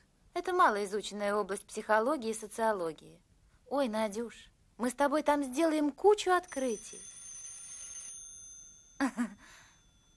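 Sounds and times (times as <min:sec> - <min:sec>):
thin steady tone: 0:00.0 - 0:10.1
speech: 0:00.4 - 0:07.1, 0:09.0 - 0:09.6
landline telephone ringing with receiver resting on its cradle: 0:06.4 - 0:10.1.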